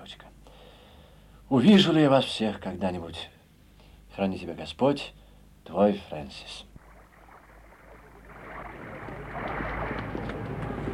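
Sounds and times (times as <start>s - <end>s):
speech: 1.5s - 3.4s, 4.2s - 6.7s
boat arriving on water with low rumble: 6.6s - 10.9s
water washing and splashing from arriving boat: 6.7s - 10.9s.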